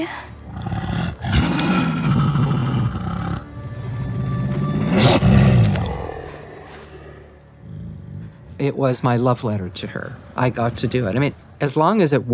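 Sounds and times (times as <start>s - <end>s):
speech: 0.0s - 0.3s, 8.6s - 12.3s
Belgian Malinois dog growling and snarling: 0.4s - 3.5s, 4.5s - 8.6s.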